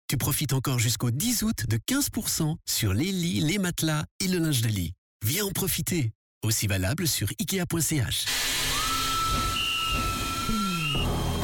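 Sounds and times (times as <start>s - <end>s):
speech: 0.1s - 8.5s
steam locomotive whistle: 8.5s - 11.4s.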